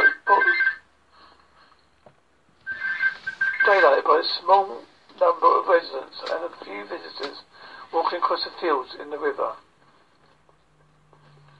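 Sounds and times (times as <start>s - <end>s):
telephone ringing in short electronic bursts: 0.0s - 0.9s, 2.6s - 4.1s
speech: 3.7s - 9.6s.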